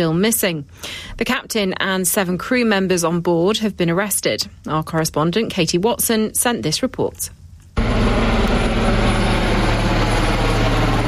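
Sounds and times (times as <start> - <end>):
speech: 0.0 - 7.4
helicopter flying overhead: 7.8 - 11.0.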